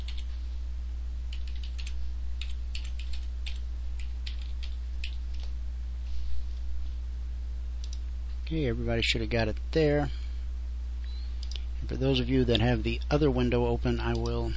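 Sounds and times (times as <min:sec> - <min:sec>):
steady low electrical hum: 0:00.0 - 0:14.5
typing on a computer keyboard: 0:01.3 - 0:05.5
speech: 0:08.5 - 0:10.2, 0:11.9 - 0:14.5.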